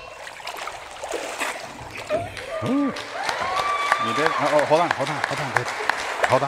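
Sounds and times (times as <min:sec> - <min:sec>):
water splashing as a person is dunked during baptism by immersion: 0:00.0 - 0:03.8
speech: 0:02.6 - 0:03.2, 0:04.0 - 0:06.4.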